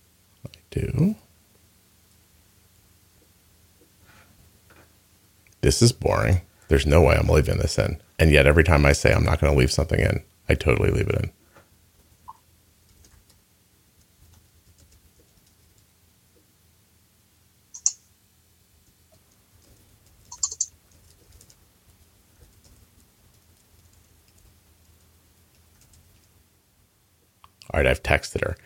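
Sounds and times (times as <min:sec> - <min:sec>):
low steady hum: 0:00.0 - 0:28.6
speech: 0:00.8 - 0:01.2, 0:05.6 - 0:11.4, 0:27.8 - 0:28.6
typing on a computer keyboard: 0:12.9 - 0:13.4, 0:14.0 - 0:15.9, 0:19.2 - 0:26.4.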